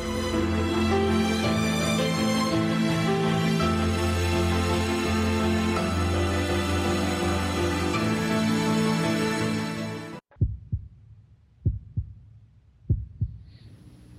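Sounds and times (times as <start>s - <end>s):
dense droning music: 0.0s - 10.2s
heartbeat: 10.3s - 14.1s.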